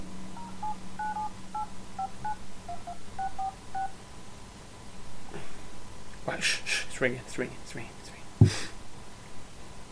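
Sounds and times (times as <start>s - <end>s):
low steady hum: 0.0s - 9.9s
mobile phone keypad dialing tones: 0.4s - 4.0s
speech: 6.4s - 8.7s.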